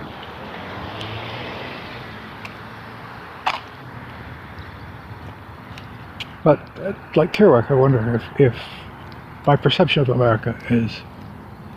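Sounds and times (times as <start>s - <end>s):
continuous roar of dense road traffic: 0.0s - 11.7s
speech: 6.4s - 11.1s.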